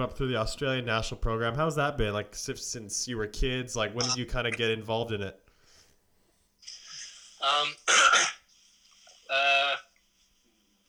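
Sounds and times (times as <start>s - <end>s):
speech: 0.0s - 5.4s
faint steady hiss: 0.0s - 10.8s
person clearing throat: 7.7s - 8.4s.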